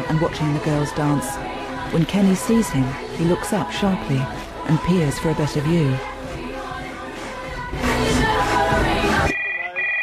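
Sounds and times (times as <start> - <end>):
music in a pub: 0.0 - 10.0
speech: 0.1 - 6.1
electronic telephone ringing in a pub: 9.3 - 10.0.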